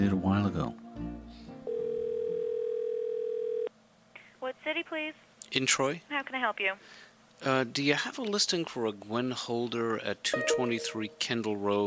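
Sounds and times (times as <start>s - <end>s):
speech: 0.0s - 1.1s, 4.7s - 11.8s
telephone dial tone: 1.7s - 3.7s
short telephone beeps: 10.4s - 11.1s.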